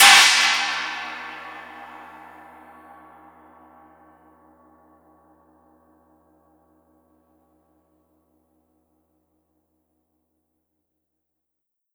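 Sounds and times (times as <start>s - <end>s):
long China cymbal crash: 0.0s - 2.0s.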